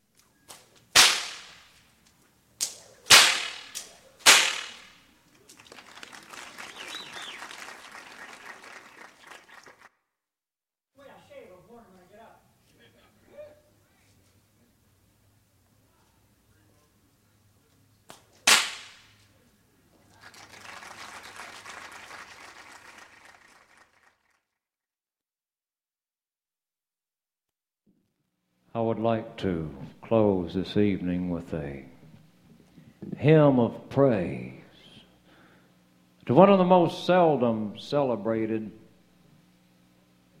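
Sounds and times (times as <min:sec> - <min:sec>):
bullwhip cracking: 0:00.5 - 0:01.8, 0:02.6 - 0:05.0, 0:18.1 - 0:19.3
audience applause: 0:05.4 - 0:09.9, 0:20.1 - 0:24.5
speech: 0:28.7 - 0:31.9, 0:33.2 - 0:34.6, 0:36.3 - 0:38.8.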